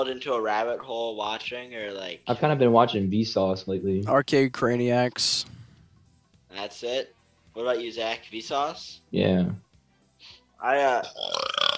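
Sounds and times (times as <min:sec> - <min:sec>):
speech: 0:00.0 - 0:05.6, 0:06.6 - 0:09.6, 0:10.6 - 0:11.6
deep croaky burp: 0:11.0 - 0:11.7.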